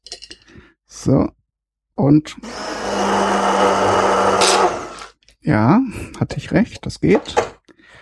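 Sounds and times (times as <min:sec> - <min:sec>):
speech: 0:01.0 - 0:01.4, 0:02.0 - 0:02.6, 0:05.4 - 0:07.5
immersion blender mixing a sauce: 0:02.4 - 0:05.1.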